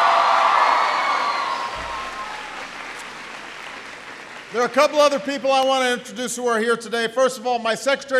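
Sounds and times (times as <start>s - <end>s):
crowd cheering and shouting: 0.0s - 5.4s
crowd applauding a speaker's introduction: 0.0s - 6.1s
speech: 4.5s - 8.1s.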